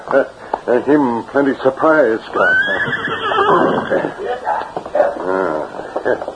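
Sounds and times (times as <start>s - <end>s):
speech: 0.1s - 6.3s
horse neighing: 2.4s - 4.3s.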